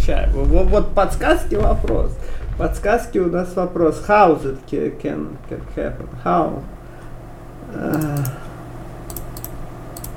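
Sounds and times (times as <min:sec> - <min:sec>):
low steady hum: 0:00.0 - 0:10.1
speech: 0:00.4 - 0:06.8, 0:07.7 - 0:08.5
computer mouse clicks: 0:07.9 - 0:08.4, 0:09.1 - 0:10.1.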